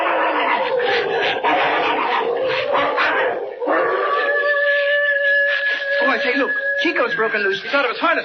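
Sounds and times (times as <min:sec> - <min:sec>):
several dogs snarling and growling in a fight: 0:00.0 - 0:05.8
dog giving a drawn-out high-pitched whine: 0:00.0 - 0:07.3
speech: 0:06.2 - 0:08.2.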